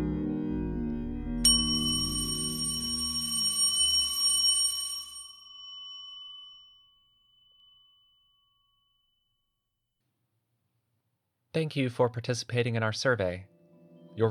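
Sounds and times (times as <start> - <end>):
low rumbling hum: 0.0 - 3.0
bell ringing: 1.4 - 9.6
speech: 11.6 - 13.6.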